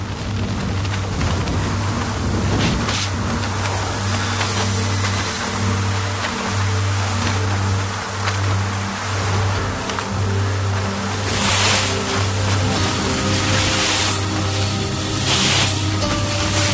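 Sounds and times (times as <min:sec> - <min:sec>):
wind and blasting sand buffeting a car on a desert road: 0:00.0 - 0:06.7, 0:11.1 - 0:16.7
steady low car engine drone: 0:00.0 - 0:16.7.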